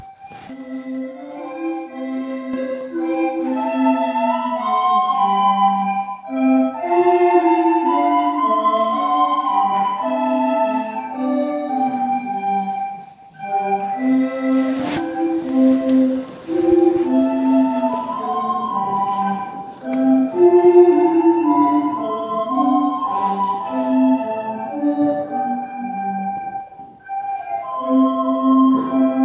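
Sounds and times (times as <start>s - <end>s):
group of flutes playing: 0.0s - 29.2s.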